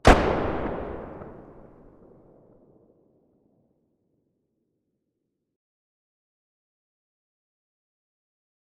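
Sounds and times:
distant weapon muzzle blasts: 0:00.0 - 0:02.0.

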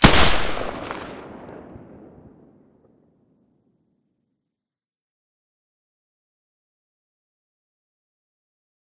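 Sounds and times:
G36 weapon with silencer: 0:00.0 - 0:02.4.

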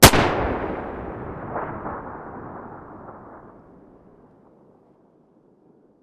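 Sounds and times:
distant Beretta gun muzzle blast: 0:00.0 - 0:04.0.

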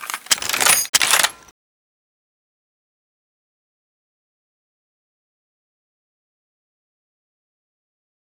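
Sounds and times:
AWM rifle bolt action: 0:00.0 - 0:01.5.

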